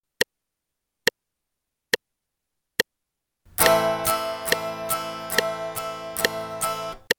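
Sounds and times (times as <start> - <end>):
guitar upstrokes and downstrokes in A minor: 3.5 - 7.1.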